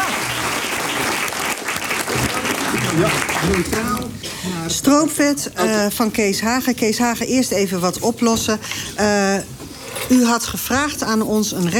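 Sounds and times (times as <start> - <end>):
audience applause at a recipe competition: 0.0 - 4.1
speech: 3.0 - 11.7.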